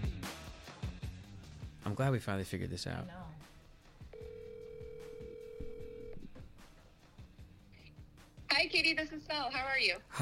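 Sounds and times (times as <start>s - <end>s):
speech: 1.8s - 3.4s, 8.8s - 10.2s
telephone line ringing: 4.1s - 6.2s.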